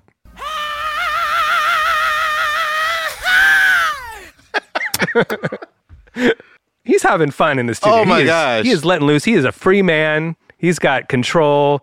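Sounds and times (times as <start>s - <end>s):
singer screaming in a funk song recording: 0.3s - 4.4s
laughter: 4.1s - 6.4s
speech: 5.2s - 5.6s, 7.0s - 11.8s.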